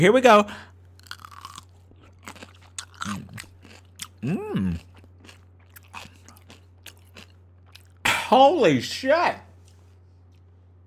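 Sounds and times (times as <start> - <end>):
speech: 0.0 - 0.7, 4.2 - 4.9, 8.3 - 9.5
low steady hum: 0.0 - 10.8
crunching and chewing a spicy snack: 0.7 - 8.0, 9.5 - 10.8.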